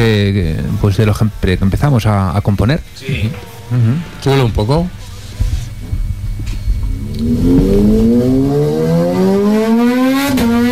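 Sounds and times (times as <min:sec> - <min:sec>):
speech: 0:00.0 - 0:05.0, 0:07.2 - 0:09.6
motorcycle engine idling and revving: 0:05.7 - 0:10.6.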